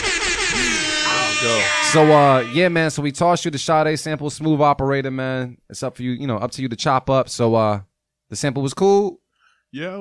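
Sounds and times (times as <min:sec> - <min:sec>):
air horn sound effect blast: 0:00.4 - 0:03.0
speech: 0:01.4 - 0:09.9.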